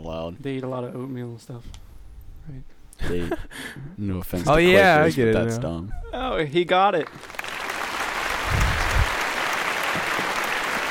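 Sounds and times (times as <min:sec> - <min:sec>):
speech: 0:00.0 - 0:07.4
canned crowd applause sound effect: 0:07.0 - 0:10.8.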